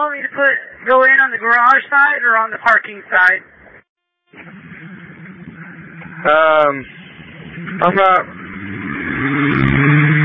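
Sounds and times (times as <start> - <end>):
speech: 0.0 - 3.6, 6.2 - 7.0, 7.6 - 9.8
heavy truck engine driving past: 4.3 - 10.2.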